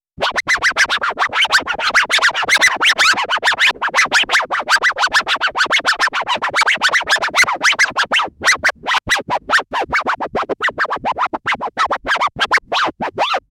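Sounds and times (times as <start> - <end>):
DJ style record scratch: 0.2 - 13.4.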